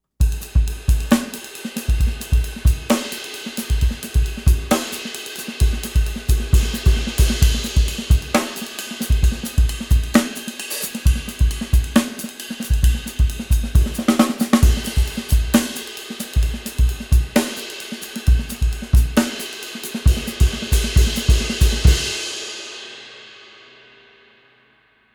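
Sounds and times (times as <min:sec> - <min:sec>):
Meinl Byz Extra Dry Thin ride cymbal: 0:00.2 - 0:22.4.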